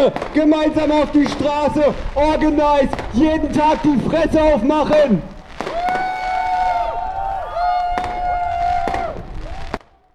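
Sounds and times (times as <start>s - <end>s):
speech: 0.0s - 5.9s
crowd noise at a solidarity action: 0.0s - 10.1s
fireworks exploding from a building rooftop at Maybachufer: 0.0s - 10.1s
long wavering firework whistle: 2.9s - 10.0s.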